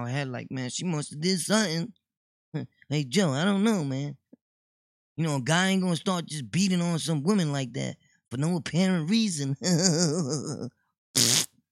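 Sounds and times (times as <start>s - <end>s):
speech: 0.0s - 4.2s, 5.2s - 11.4s
fart: 11.2s - 11.6s.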